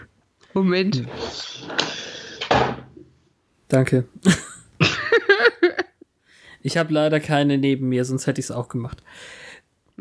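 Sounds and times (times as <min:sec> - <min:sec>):
speech: 0:00.6 - 0:02.8, 0:03.7 - 0:04.4, 0:06.6 - 0:09.4
drawer being opened and closed: 0:01.0 - 0:03.1
laughter: 0:04.3 - 0:06.0.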